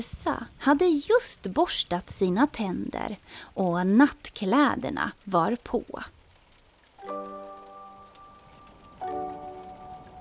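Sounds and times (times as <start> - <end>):
speech: 0.0 - 6.2
steady rain: 0.0 - 10.2
sustained bell-like musical chords: 7.0 - 10.2.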